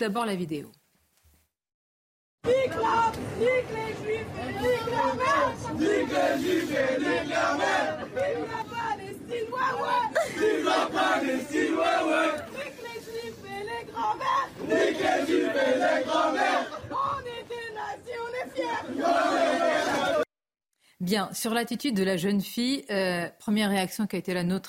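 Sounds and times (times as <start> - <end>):
speech: 0.0 - 0.8, 2.4 - 8.7, 21.0 - 24.6
large crowd chanting in unison: 2.4 - 20.3.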